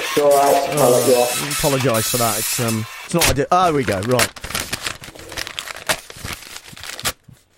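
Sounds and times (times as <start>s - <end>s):
speech: 0.2s - 4.4s
busy crinkling and crumpling of paper: 3.6s - 7.5s.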